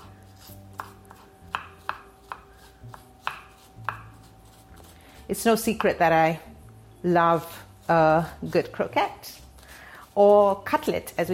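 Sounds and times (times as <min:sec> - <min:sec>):
knife finely dicing a stalk of celery on a board: 0:00.0 - 0:04.9
speech: 0:05.3 - 0:09.4, 0:10.2 - 0:11.3.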